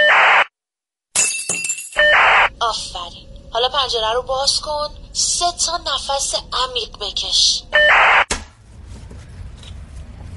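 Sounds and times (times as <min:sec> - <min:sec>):
drinking glass smashing: 0:01.1 - 0:02.1
tinkling of scattered glass shards: 0:01.2 - 0:02.0
speech: 0:02.6 - 0:08.0.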